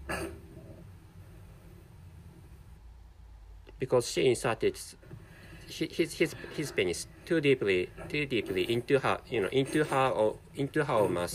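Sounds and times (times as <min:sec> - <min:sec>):
low murmur of noise: 0:00.0 - 0:11.3
woman gagging cough: 0:00.1 - 0:00.4
speech: 0:03.8 - 0:05.0, 0:05.7 - 0:11.3.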